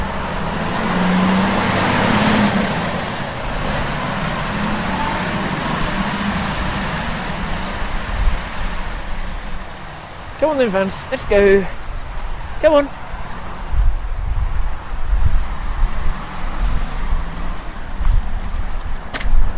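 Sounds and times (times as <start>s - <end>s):
engine and road rumble of a motor vehicle, possibly a snow sweeper: 0.0s - 19.5s
speech: 10.5s - 11.8s, 12.6s - 13.0s.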